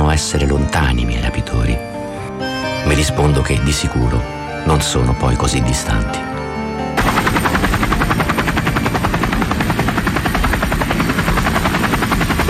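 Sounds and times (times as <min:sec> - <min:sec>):
speech: 0:00.2 - 0:01.9, 0:02.9 - 0:06.4
military helicopter rotor thumping: 0:07.0 - 0:12.4.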